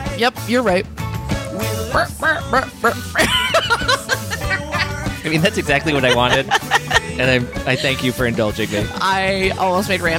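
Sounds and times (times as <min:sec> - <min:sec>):
speech: 0:00.2 - 0:01.0, 0:01.6 - 0:03.4, 0:05.2 - 0:10.1
cartoon duck quacks imitated by musical instruments: 0:01.8 - 0:03.3
laughter: 0:02.0 - 0:08.9.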